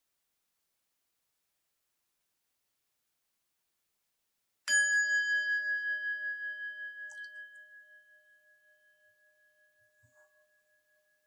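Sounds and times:
meditation bell struck and ringing: 4.7s - 11.2s.

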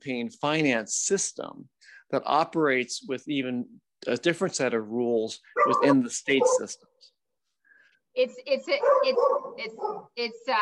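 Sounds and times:
speech: 0.0s - 7.1s, 8.2s - 10.6s
dog barking: 5.6s - 6.8s, 8.7s - 10.2s.

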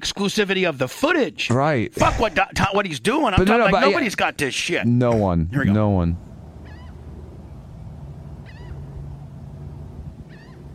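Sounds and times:
speech: 0.0s - 6.3s
seagulls calling: 6.3s - 10.7s.

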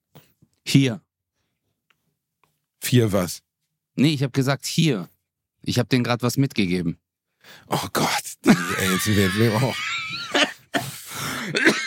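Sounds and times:
speech: 0.7s - 1.0s, 2.9s - 10.2s
laughter: 8.5s - 10.7s
coughing into a microphone: 10.4s - 11.8s.

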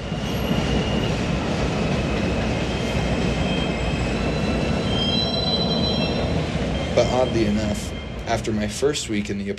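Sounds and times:
subway train rumbling past an apartment window: 0.0s - 9.5s
high metallic squealing of subway wheels on track: 3.4s - 8.2s
speech: 7.0s - 9.5s.

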